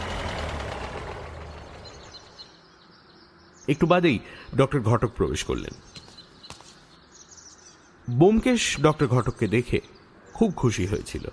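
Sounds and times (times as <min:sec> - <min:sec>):
motor car engine running outside: 0:00.0 - 0:02.5
speech: 0:03.7 - 0:06.0, 0:08.1 - 0:11.3.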